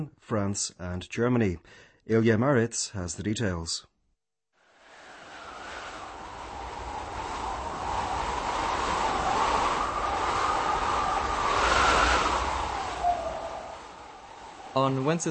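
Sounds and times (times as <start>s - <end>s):
speech: 0.0s - 3.9s, 14.8s - 15.2s
strong storm wind roaring in gusts: 4.8s - 15.2s.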